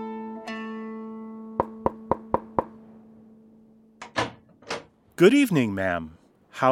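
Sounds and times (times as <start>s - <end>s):
hand knocking on the wooden door of a small hut: 1.6s - 2.8s
speech: 5.2s - 6.6s.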